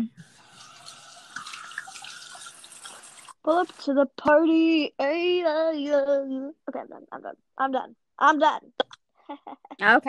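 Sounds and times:
water running from a tap while hands are washed: 0.2 - 3.9
speech: 3.4 - 10.0.

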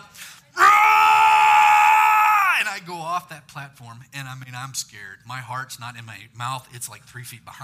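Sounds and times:
man imitating a deep manly scream: 0.6 - 2.6
speech: 3.2 - 7.6.

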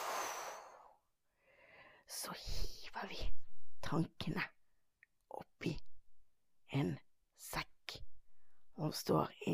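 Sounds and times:
long breathy exhale: 0.0 - 2.0
softer airy breath: 0.0 - 2.7
speech: 2.1 - 4.6, 6.7 - 7.7, 8.8 - 9.5.

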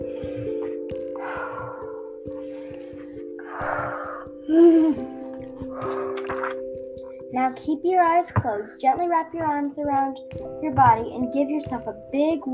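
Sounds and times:
slow deep breathing in and out during a calming exercise: 0.0 - 6.3
speech: 7.5 - 12.5.

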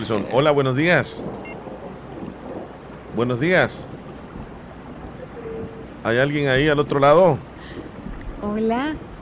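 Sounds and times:
speech: 0.0 - 1.5, 3.2 - 4.0, 6.0 - 7.5, 8.4 - 9.1
rain falling outdoors in Pachaquinita: 0.0 - 9.2.

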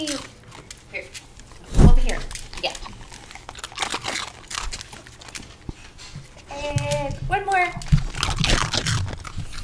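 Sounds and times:
dogs crunching and chewing hard treats: 0.0 - 9.6.

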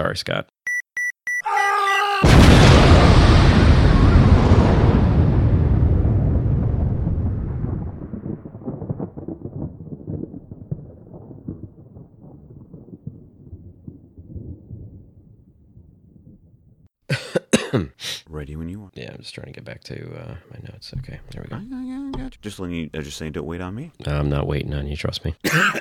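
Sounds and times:
speech: 0.0 - 0.6, 17.7 - 25.8
quick electronic beeps: 0.7 - 2.0
loud explosion: 2.2 - 13.5
person coughing: 17.1 - 18.0, 25.5 - 25.8
person clearing throat: 17.1 - 18.1, 25.5 - 25.8.

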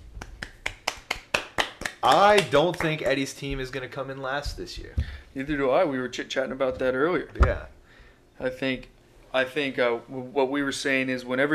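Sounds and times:
crisp hand clapping: 0.0 - 3.2
speech: 2.0 - 7.8, 8.4 - 11.5.

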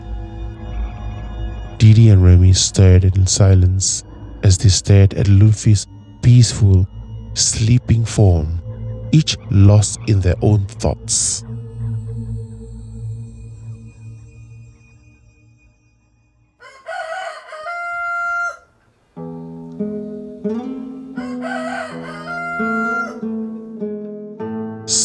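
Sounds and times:
speech: 1.8 - 11.6
rooster crowing: 16.6 - 23.6.

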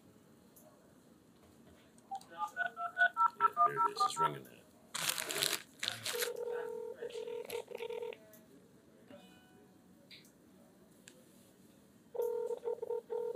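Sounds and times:
telephone keypad dialing beeps: 2.1 - 4.3
steady sustained phone-line tones: 2.6 - 4.3, 6.3 - 8.1, 12.2 - 13.3.

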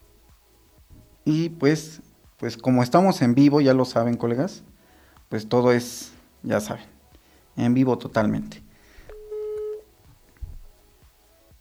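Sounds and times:
speech: 1.3 - 4.7, 5.3 - 6.9, 7.6 - 8.6
telephone beep while reconnecting a call: 9.1 - 9.8
soft thump: 10.4 - 10.7.

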